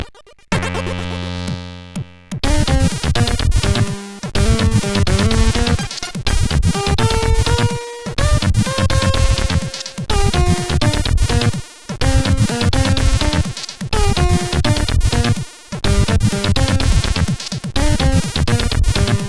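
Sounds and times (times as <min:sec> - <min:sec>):
chiptune music on a SID chip: 0:00.2 - 0:19.2.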